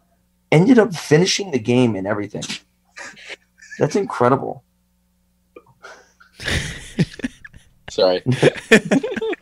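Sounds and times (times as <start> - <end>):
speech: 0.5 - 2.7, 3.8 - 4.7, 8.0 - 9.3
small dog sneezing: 2.4 - 2.6
laughter: 3.0 - 4.1, 6.4 - 9.3.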